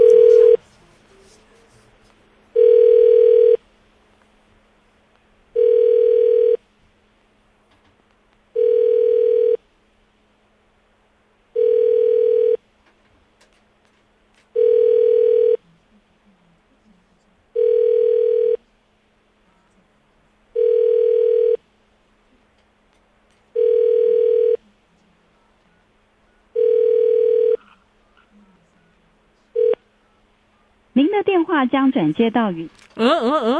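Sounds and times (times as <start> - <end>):
outgoing phone call ringback tone: 0.0 - 0.6, 2.6 - 3.6, 5.6 - 6.6, 8.6 - 9.6, 11.6 - 12.6, 14.6 - 15.6, 17.6 - 18.6, 20.6 - 21.6, 23.6 - 24.6, 26.6 - 27.6, 29.6 - 29.8
speech: 31.2 - 33.5.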